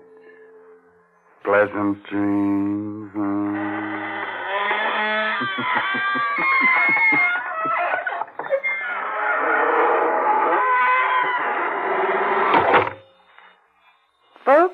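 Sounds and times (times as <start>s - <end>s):
speech: 1.4s - 4.0s, 5.4s - 8.0s
squeaking door creaking shut in a long wavering squeal: 3.3s - 13.2s
laughter: 5.3s - 8.5s.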